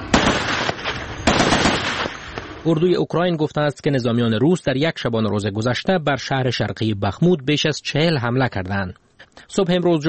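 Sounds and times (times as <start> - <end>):
gunfire from soldiers kneeling in muddy trenches in combat: 0.0 - 2.6
speech: 2.6 - 10.0.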